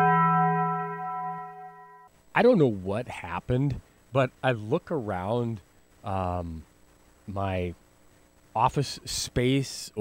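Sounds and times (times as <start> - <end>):
bell ringing: 0.0 - 2.1
speech: 2.4 - 6.7, 7.3 - 7.8, 8.5 - 9.9.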